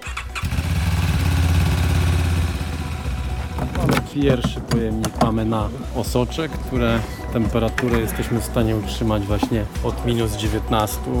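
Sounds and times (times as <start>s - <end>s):
ambulance motorcycle engine starting and idling: 0.0s - 4.0s
speech: 4.2s - 11.1s.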